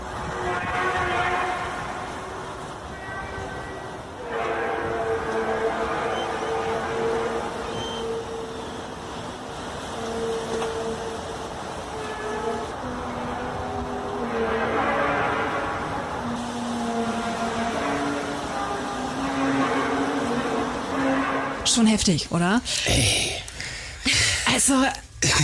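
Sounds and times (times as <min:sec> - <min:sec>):
loud metallic horn-like droning from the sky: 0:00.0 - 0:22.1
speech: 0:21.8 - 0:23.4, 0:24.7 - 0:25.4.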